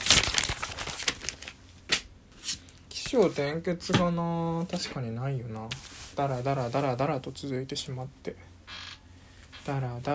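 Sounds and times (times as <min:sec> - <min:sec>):
notebook paper being handled, crinkling and rustling: 0:00.0 - 0:01.6, 0:05.6 - 0:07.1
speech: 0:03.1 - 0:08.5, 0:09.6 - 0:10.1.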